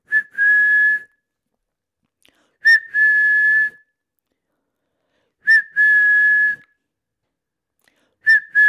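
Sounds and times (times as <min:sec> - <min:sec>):
person whistling as a training cue for cats: 0:00.0 - 0:01.1, 0:02.6 - 0:03.9, 0:05.4 - 0:06.8, 0:08.2 - 0:08.6.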